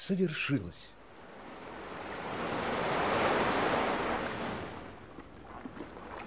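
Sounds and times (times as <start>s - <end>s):
speech: 0.0s - 1.0s
sea waves breaking on shore: 1.0s - 6.2s
softer foamy wash of sea water: 1.8s - 6.2s.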